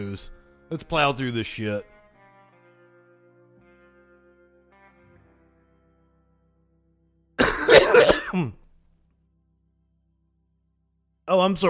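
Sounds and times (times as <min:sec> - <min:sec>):
speech: 0:00.0 - 0:01.9, 0:11.3 - 0:11.6
harsh raspy cough into a microphone: 0:07.4 - 0:08.6.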